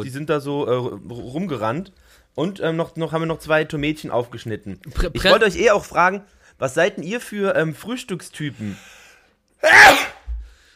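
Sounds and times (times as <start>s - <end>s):
speech: 0.0s - 9.0s, 9.6s - 10.1s
sharp sneeze: 9.6s - 10.3s.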